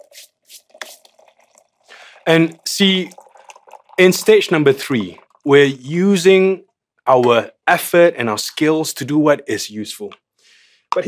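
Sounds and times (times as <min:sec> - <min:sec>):
water pouring into a French press holding coffee powder: 0:00.0 - 0:05.8
speech: 0:02.3 - 0:03.2, 0:04.0 - 0:10.2.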